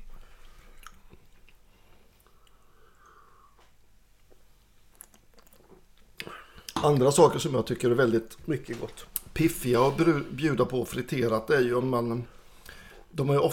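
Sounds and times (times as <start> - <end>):
faint breathing: 0.0 - 0.8, 1.6 - 3.8, 12.3 - 13.1
person chewing razor clam: 0.3 - 6.8
speech: 6.8 - 12.4, 13.2 - 13.5.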